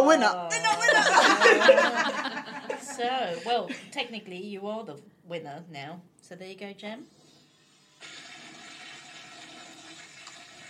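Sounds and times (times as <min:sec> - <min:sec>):
speech: 0:00.0 - 0:02.4, 0:03.0 - 0:07.2
laughter: 0:00.6 - 0:03.9
toilet flushing: 0:07.1 - 0:10.6.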